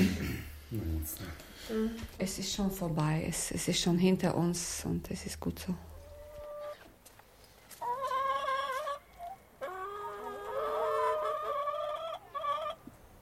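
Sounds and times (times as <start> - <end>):
speech: 0.7 - 5.9
chickens clucking and squawking: 5.9 - 7.0, 7.7 - 13.0.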